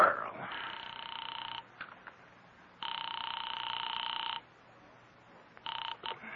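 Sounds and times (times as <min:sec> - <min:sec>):
telephone ringback tone on a call line: 0:00.6 - 0:01.7, 0:02.8 - 0:04.5, 0:05.6 - 0:06.2.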